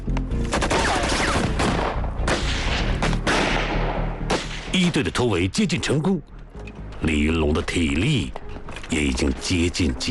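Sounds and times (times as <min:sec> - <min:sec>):
squad returning gunfire at night: 0:00.5 - 0:04.8
speech: 0:04.7 - 0:06.4, 0:07.0 - 0:10.1.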